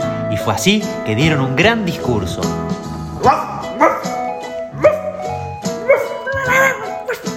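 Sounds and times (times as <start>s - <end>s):
speech: 0.4s - 3.4s
dogs barking with loud yelps and woofs: 3.1s - 7.3s.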